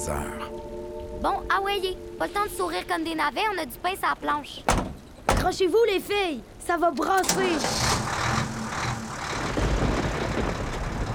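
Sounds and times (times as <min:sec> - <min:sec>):
speech: 0:00.0 - 0:08.0
moving truck engine roaring on a wet road: 0:07.2 - 0:11.1.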